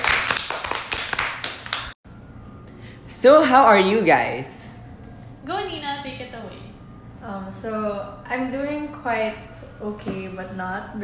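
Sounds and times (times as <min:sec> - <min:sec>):
small group applauding to welcome guests: 0:00.0 - 0:02.0
speech: 0:03.2 - 0:04.6, 0:07.2 - 0:11.0.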